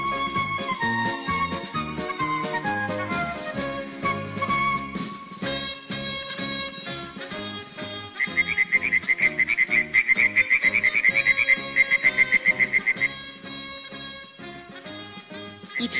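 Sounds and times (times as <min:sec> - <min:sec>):
tonal music-like backing: 0:00.0 - 0:15.9
brighter faster chirping: 0:08.2 - 0:13.2
frogs croaking: 0:08.2 - 0:13.2.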